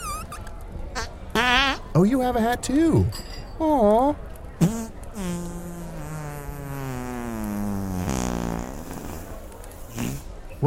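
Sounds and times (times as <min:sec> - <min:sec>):
long drawn-out buzzy fart: 0:00.0 - 0:00.4, 0:04.6 - 0:10.4
speech: 0:02.0 - 0:05.4.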